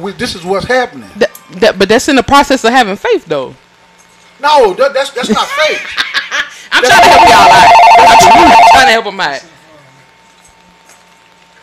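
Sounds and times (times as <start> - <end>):
speech: 0.0 - 3.6, 4.4 - 9.5
laughter: 5.3 - 8.8
telephone ringing with incoming call: 6.8 - 9.0.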